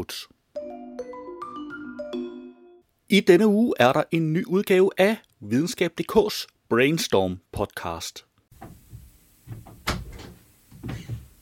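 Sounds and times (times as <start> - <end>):
speech: 0.0 - 0.4, 3.1 - 8.7
door opening and closing with handling clunks: 8.5 - 11.4.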